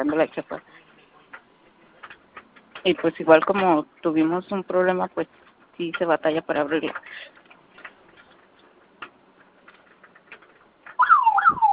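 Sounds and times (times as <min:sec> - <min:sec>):
speech: 0:00.0 - 0:00.7, 0:02.8 - 0:07.4
quiet scattered clicks and rattles: 0:00.0 - 0:04.6, 0:05.3 - 0:11.0
door security alarm with rising-and-falling electronic warble: 0:11.0 - 0:11.7.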